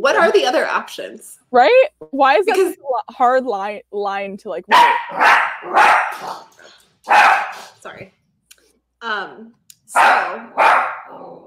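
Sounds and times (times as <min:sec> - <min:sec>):
speech: 0:00.0 - 0:08.2, 0:09.0 - 0:11.4
dog barking at a spider: 0:04.7 - 0:06.5, 0:07.1 - 0:07.8, 0:09.9 - 0:11.2
dog high-pitched yelp: 0:04.7 - 0:06.5, 0:07.1 - 0:07.6.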